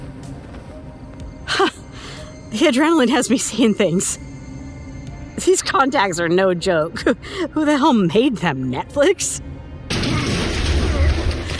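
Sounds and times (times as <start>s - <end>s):
speech: 2.5s - 4.3s, 5.4s - 9.5s
heavy smash and thump: 9.9s - 11.5s.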